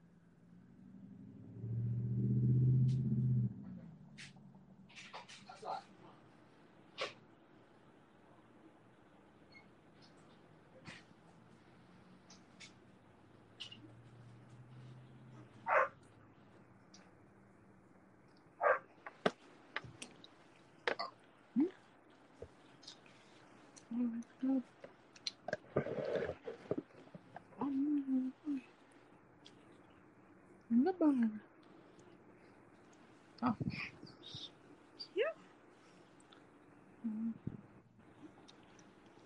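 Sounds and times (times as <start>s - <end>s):
low steady hum: 0.0s - 39.2s
dog barking: 15.6s - 16.0s, 18.6s - 18.9s.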